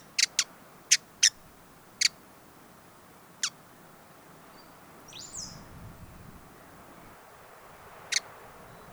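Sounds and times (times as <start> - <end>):
hooded visorbearer sharp chip calls: 0.0 - 1.4, 8.0 - 8.8.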